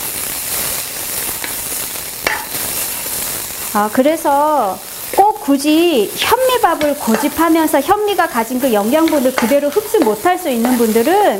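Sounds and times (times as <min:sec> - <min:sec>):
vegetables stir-frying in a pan over very high heat: 0:00.0 - 0:11.3
utensil clinking against a pan: 0:02.3 - 0:02.6, 0:06.7 - 0:07.5, 0:09.0 - 0:11.1
speech: 0:03.7 - 0:04.9, 0:05.5 - 0:11.3.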